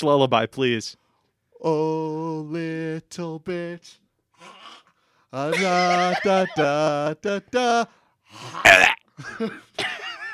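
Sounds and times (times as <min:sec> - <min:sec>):
speech: 0:00.0 - 0:01.0, 0:01.6 - 0:10.0
laughter: 0:05.5 - 0:06.8
drawn-out croaky burps: 0:08.5 - 0:09.1.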